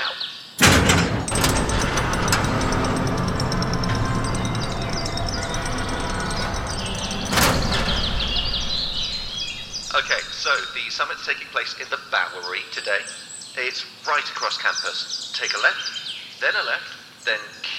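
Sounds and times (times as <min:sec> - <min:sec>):
gates sliding open with mechanical rumble: 0:00.6 - 0:11.4
speech: 0:10.0 - 0:17.7.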